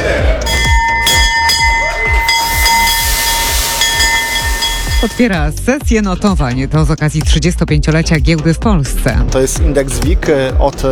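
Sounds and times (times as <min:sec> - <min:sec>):
stock exchange opening bell ringing: 0:00.4 - 0:05.3
speech: 0:05.0 - 0:10.9.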